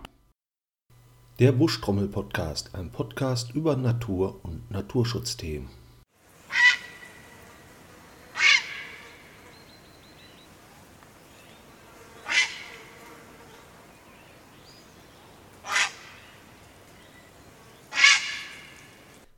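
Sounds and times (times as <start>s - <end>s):
speech: 1.4s - 5.8s
grey heron giving harsh croaking calls: 6.5s - 7.1s, 8.3s - 9.0s, 12.3s - 12.8s, 15.6s - 16.3s, 17.9s - 18.7s.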